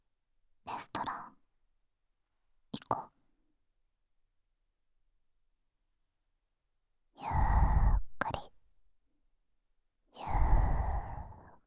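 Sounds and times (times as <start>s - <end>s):
deep breath in and out during a guided relaxation: 7.2s - 8.2s, 10.2s - 11.6s.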